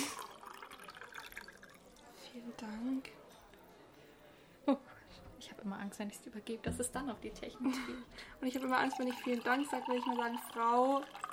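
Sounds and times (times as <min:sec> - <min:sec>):
water pouring into a glass: 0:00.0 - 0:02.2, 0:08.4 - 0:11.3
speech: 0:02.3 - 0:03.2, 0:04.7 - 0:11.2
laughter: 0:07.5 - 0:08.2.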